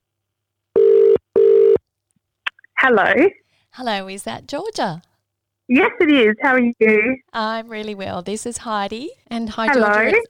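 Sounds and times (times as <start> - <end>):
telephone ringback tone while placing a call: 0.8 - 1.8
speech: 2.8 - 5.1, 5.7 - 10.2.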